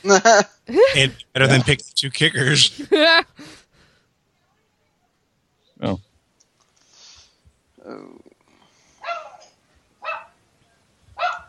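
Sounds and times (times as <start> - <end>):
speech: 0.0 - 3.6, 5.8 - 6.1, 7.8 - 8.3
low noise: 0.0 - 11.4
dog yelps: 9.0 - 10.3, 11.2 - 11.4
dog barking: 9.0 - 10.4, 11.2 - 11.4.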